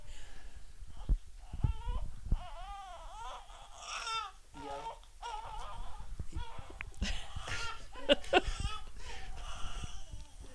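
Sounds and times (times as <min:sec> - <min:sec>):
baby crying: 0:01.0 - 0:10.4.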